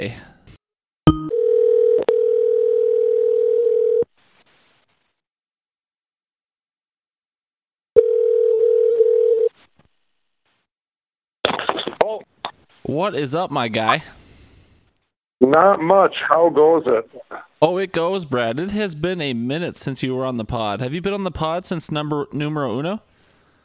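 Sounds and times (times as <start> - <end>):
speech: 0.0 - 0.3, 12.9 - 14.2, 15.4 - 23.1
long flat electronic beep: 1.1 - 1.3
telephone tone while a call goes out: 1.3 - 4.1, 8.0 - 9.5.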